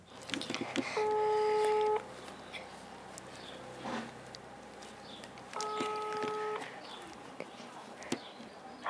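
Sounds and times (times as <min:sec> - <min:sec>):
ringback tone of an outgoing telephone call: 0:01.0 - 0:02.1, 0:05.6 - 0:06.7.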